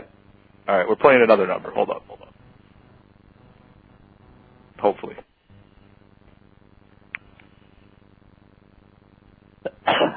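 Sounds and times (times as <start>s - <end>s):
speech: 0.7s - 2.2s, 4.8s - 5.3s
faint click: 7.1s - 7.5s
person sneezing: 9.6s - 10.1s.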